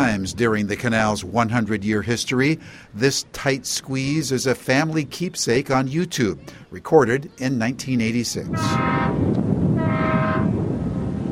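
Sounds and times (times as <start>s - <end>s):
speech: 0.1s - 9.5s
constant low rumbling background: 8.5s - 11.3s
tugboat whistle in a canal: 8.6s - 9.2s, 9.8s - 10.6s.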